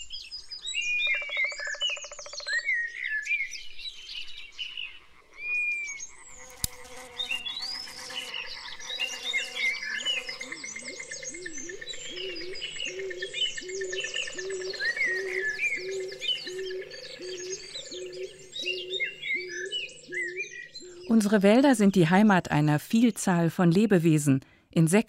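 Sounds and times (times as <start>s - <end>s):
many forest birds chirping and trilling overhead: 0.0s - 24.0s
chorus of frogs croaking rhythmically in a forest: 1.0s - 2.7s, 4.4s - 21.8s
speech: 21.2s - 25.0s.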